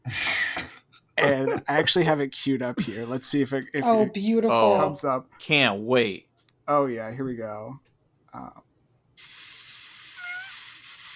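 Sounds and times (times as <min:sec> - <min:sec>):
abrupt breathy hiss: 0:00.0 - 0:00.8, 0:09.2 - 0:11.1
speech: 0:00.1 - 0:00.3, 0:01.2 - 0:07.8, 0:08.4 - 0:08.7
brief squeaky tonal creature cry: 0:01.2 - 0:01.7
laughter: 0:01.2 - 0:04.9.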